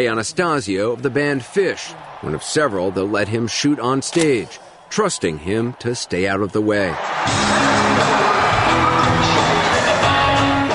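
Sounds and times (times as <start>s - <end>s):
speech: 0.0s - 8.2s
large arena crowd cheering at a concert: 0.0s - 10.7s.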